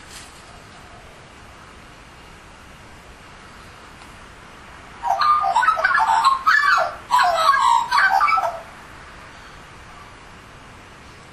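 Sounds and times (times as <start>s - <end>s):
Australian magpie warbling fluty notes: 5.0s - 8.7s.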